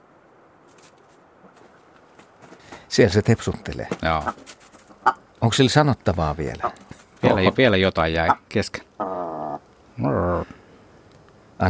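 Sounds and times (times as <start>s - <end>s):
speech: 2.9s - 8.8s
bird giving nasal clucking and muttering calls: 4.0s - 5.3s, 6.5s - 9.6s.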